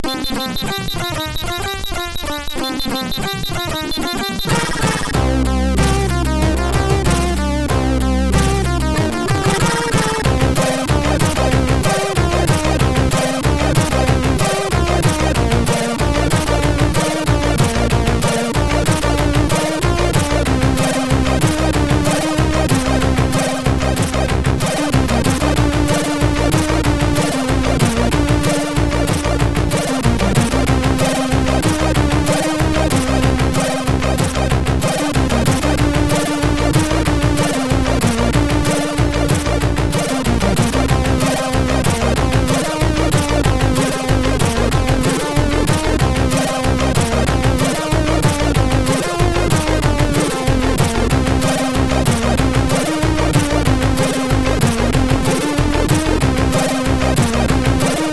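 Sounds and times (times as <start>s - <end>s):
MOS6581R4 SID chip synth sound: 0.0s - 58.1s.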